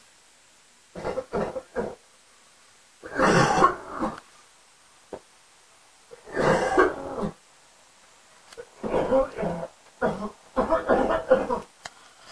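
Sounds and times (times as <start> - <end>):
person coughing: 1.0 - 2.0, 3.0 - 4.2, 6.2 - 7.4, 8.6 - 11.7.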